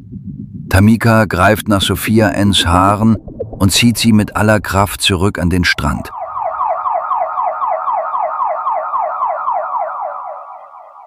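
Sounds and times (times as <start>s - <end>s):
speech: 0.7s - 6.2s
ambulance siren yelping: 6.1s - 11.0s.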